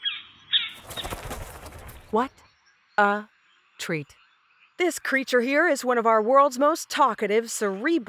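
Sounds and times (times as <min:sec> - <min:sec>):
bird chirping: 0:00.0 - 0:03.1
bird wings flapping as it lands: 0:00.7 - 0:02.4
speech: 0:02.1 - 0:04.2, 0:04.8 - 0:08.0.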